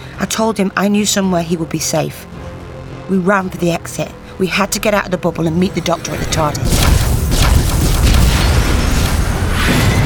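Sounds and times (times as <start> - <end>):
speech: 0.2 - 2.4, 3.1 - 7.0
rumbling explosions with crackling bursts as a ship is attacked: 6.1 - 10.0.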